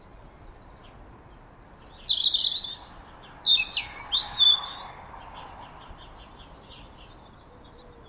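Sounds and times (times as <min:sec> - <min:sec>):
European robin Erithacus rubecula singing: 0:00.0 - 0:08.0.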